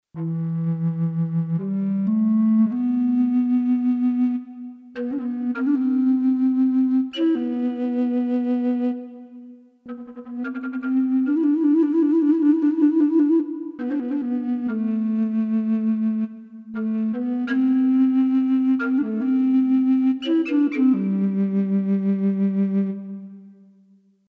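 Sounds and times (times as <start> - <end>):
cedar Native American contrabass flute: 0.1 - 24.0.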